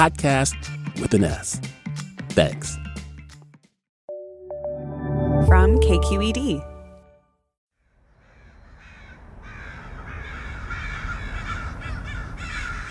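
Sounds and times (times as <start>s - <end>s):
speech: 0.0s - 1.8s, 2.4s - 2.8s, 5.4s - 6.7s
flock of American crows cawing: 8.1s - 12.9s.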